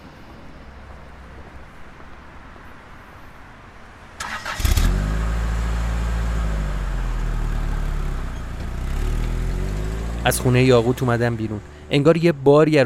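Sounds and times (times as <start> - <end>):
car engine cranking, starting and idling: 0.4 - 12.8
speech: 10.3 - 12.8.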